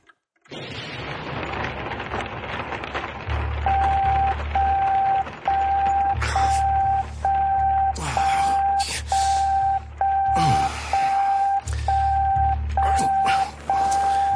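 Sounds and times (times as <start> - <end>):
rain falling: 0.5 - 14.3
repeating electronic beep: 3.6 - 14.3.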